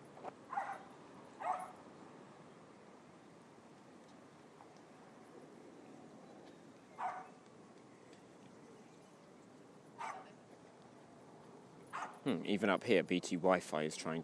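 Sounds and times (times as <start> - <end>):
dog barking outdoors: 0.5 - 1.8, 7.0 - 7.4, 10.0 - 10.4, 11.9 - 12.2
speech: 12.2 - 14.2.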